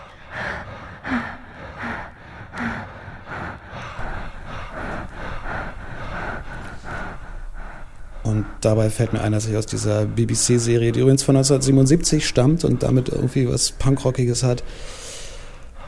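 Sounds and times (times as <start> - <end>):
woman breathing heavily with rhythmic panting gasps: 0.0 - 9.9, 14.6 - 15.8
man breathing heavily with rhythmic panting gasps: 0.0 - 13.3, 14.6 - 15.8
speech: 8.3 - 15.0.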